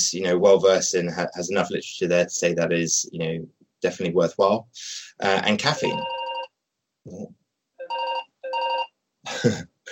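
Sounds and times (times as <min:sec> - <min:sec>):
speech: 0:00.1 - 0:06.2, 0:07.1 - 0:07.4, 0:09.2 - 0:09.9
telephone ringing in trilling bursts: 0:05.7 - 0:06.5, 0:07.8 - 0:08.9.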